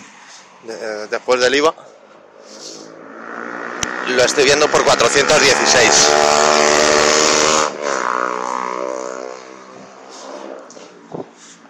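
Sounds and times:
faint noise: 0.0 - 11.6
speech: 0.6 - 1.9, 4.1 - 7.4
motorcycle engine roaring while passing by outside: 1.8 - 11.4.

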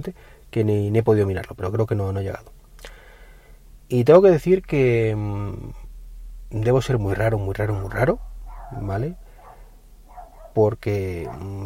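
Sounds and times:
speech: 0.0 - 2.6, 3.9 - 5.8, 6.5 - 9.2, 10.6 - 11.6
steady low engine-like hum: 3.3 - 11.6
dog barking: 8.3 - 11.6.

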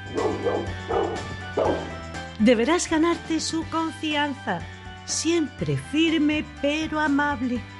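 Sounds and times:
dog barking: 0.0 - 2.0
speech: 2.4 - 7.7.

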